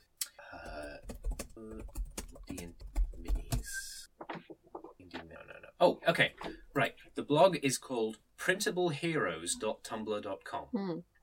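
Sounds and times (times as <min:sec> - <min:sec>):
typing and clicking on computer keyboard: 0:00.6 - 0:03.7
speech: 0:01.6 - 0:03.4, 0:05.8 - 0:11.1.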